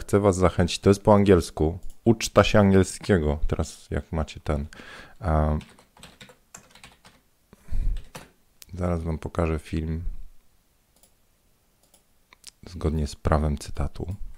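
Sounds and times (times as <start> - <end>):
speech: 0.1 - 5.8, 8.7 - 10.1, 12.7 - 14.3
computer keyboard typing: 5.5 - 7.2, 8.0 - 8.4, 11.8 - 12.1
computer mouse clicking: 11.0 - 11.2, 11.8 - 12.6.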